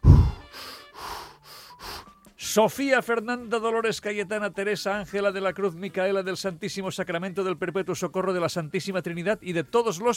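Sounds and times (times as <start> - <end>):
deep breaths taken as a breathing exercise: 0.0 - 2.2
speech: 2.6 - 10.1.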